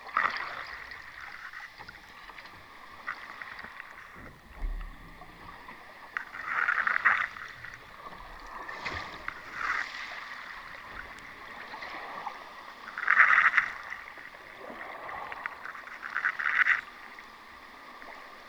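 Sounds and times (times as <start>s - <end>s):
hull scrapes recorded with a hydrophone: 0.0s - 14.6s.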